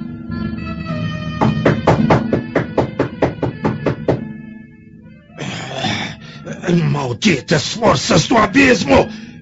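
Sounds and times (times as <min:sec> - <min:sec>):
sustained musical drone: 0:00.0 - 0:09.4
man knocking on a wooden door: 0:01.4 - 0:04.3
speech: 0:06.7 - 0:09.2.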